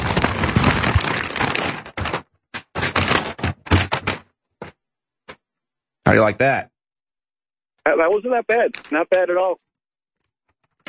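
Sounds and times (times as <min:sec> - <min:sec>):
paper being shaken and crumpled: 0:00.0 - 0:04.3
speech: 0:06.1 - 0:06.7, 0:07.9 - 0:09.6.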